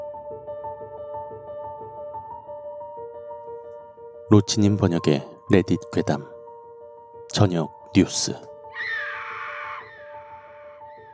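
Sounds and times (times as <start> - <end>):
speech: 4.3 - 6.3, 7.3 - 8.9
woman's shrill scream echoing across a store: 8.8 - 11.1.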